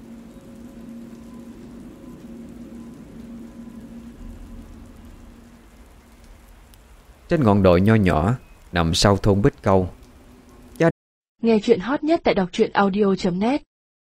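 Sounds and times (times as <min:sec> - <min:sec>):
soft low rumble: 0:00.0 - 0:10.8
heavy afternoon rain: 0:00.0 - 0:10.9
speech: 0:07.3 - 0:10.0, 0:10.8 - 0:13.7.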